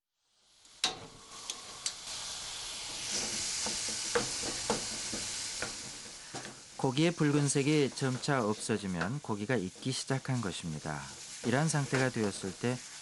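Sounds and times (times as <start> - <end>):
ground meat sizzling in a pot: 0.2 - 12.9
speech: 6.8 - 12.9.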